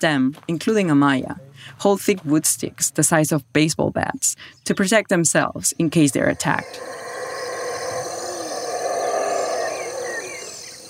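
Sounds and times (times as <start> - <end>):
speech: 0.0 - 7.1
forest ambience: 5.4 - 10.8
howler monkeys roaring chorus in lush trees: 6.1 - 10.8
faint bird calls: 6.2 - 10.8.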